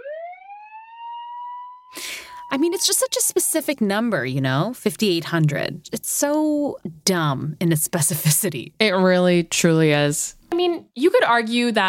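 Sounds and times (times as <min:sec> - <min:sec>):
siren sound effect: 0:00.0 - 0:04.0
speech: 0:01.9 - 0:10.4, 0:11.0 - 0:11.8.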